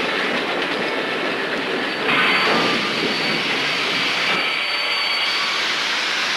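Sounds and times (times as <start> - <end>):
passenger train rolling to a stop: 0.0 - 6.3
faint metallic squeals of wheels or brakes: 1.8 - 6.3.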